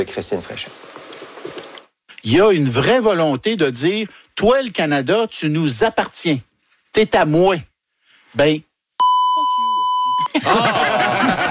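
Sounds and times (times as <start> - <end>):
speech: 0.0 - 1.0, 2.2 - 7.7, 8.3 - 8.7, 10.3 - 11.4
high-pitched censor bleep: 9.0 - 10.3
laughter: 10.2 - 11.4.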